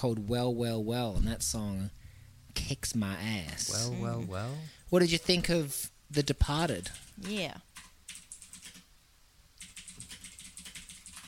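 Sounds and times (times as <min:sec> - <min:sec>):
speech: 0:00.0 - 0:02.0, 0:02.6 - 0:07.7
typing on a computer keyboard: 0:06.8 - 0:08.9, 0:09.6 - 0:11.2.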